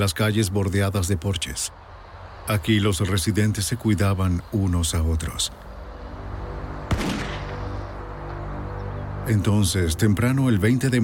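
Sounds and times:
speech: 0:00.0 - 0:05.7, 0:09.3 - 0:11.0
single gunshot: 0:06.9 - 0:07.6.

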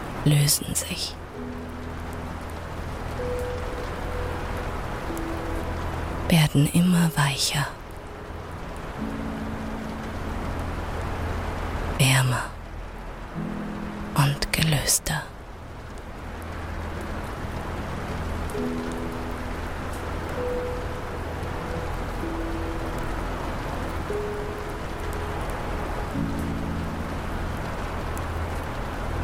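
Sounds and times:
soft steady rain pattering on a glass roof: 0:00.0 - 0:29.2
speech: 0:00.2 - 0:01.6, 0:06.3 - 0:07.8, 0:12.0 - 0:12.5, 0:14.6 - 0:15.3.

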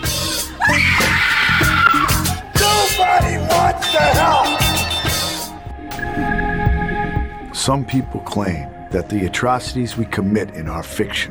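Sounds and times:
person letting out a loud high-pitched scream: 0:00.6 - 0:04.5
low rhythmic thumping: 0:01.8 - 0:10.3
speech: 0:07.7 - 0:11.2.

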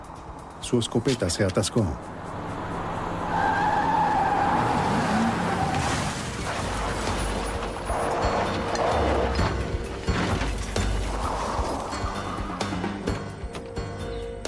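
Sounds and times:
speech: 0:00.7 - 0:02.1
car engine roaring: 0:02.0 - 0:13.6
car tires squealing in a skid: 0:03.0 - 0:13.2
car ramming a police patrol car with metallic crunching and scraping: 0:05.4 - 0:13.1.

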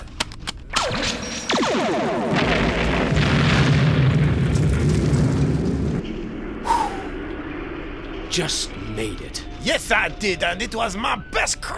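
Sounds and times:
sci-fi weapon firing space torpedoes with a zap and descending whine: 0:00.7 - 0:04.0
massive rumbling explosion: 0:01.6 - 0:09.0
speech: 0:08.4 - 0:11.7.

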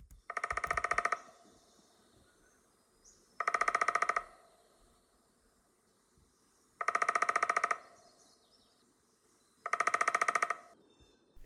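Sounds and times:
Downy Woodpecker drumming: 0:00.0 - 0:01.4, 0:03.4 - 0:04.4, 0:06.8 - 0:08.0, 0:09.6 - 0:10.8.

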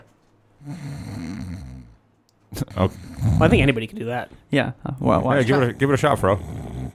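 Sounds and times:
speech: 0:00.6 - 0:01.1, 0:02.6 - 0:06.6
person imitating a snore: 0:00.6 - 0:02.0, 0:02.6 - 0:03.7, 0:05.5 - 0:06.9.

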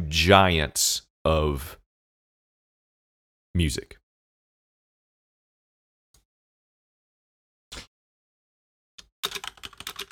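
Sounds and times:
speech: 0:00.1 - 0:01.8, 0:03.6 - 0:04.0
typing on a computer keyboard: 0:09.0 - 0:10.1.

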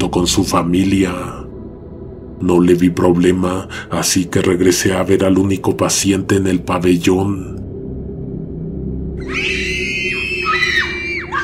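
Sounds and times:
speech: 0:00.0 - 0:01.4, 0:02.4 - 0:07.6
woman and children screaming at a clinic: 0:09.2 - 0:11.4.

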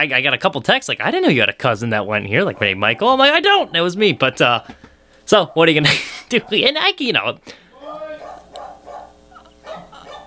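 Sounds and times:
speech: 0:00.0 - 0:07.6
dog barking excitedly in the background: 0:05.4 - 0:05.7, 0:06.3 - 0:06.7, 0:08.1 - 0:10.2.

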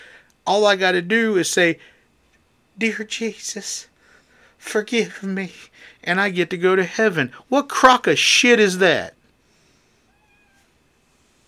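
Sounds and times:
steady hiss of noise: 0:00.0 - 0:11.4
speech: 0:00.5 - 0:01.9, 0:02.8 - 0:03.9, 0:04.6 - 0:09.2
cat meowing faintly: 0:10.1 - 0:10.8.

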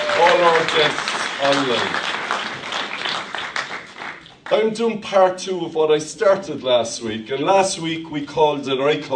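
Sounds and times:
audience applause: 0:00.0 - 0:04.6
speech: 0:00.4 - 0:02.2, 0:04.5 - 0:09.1.

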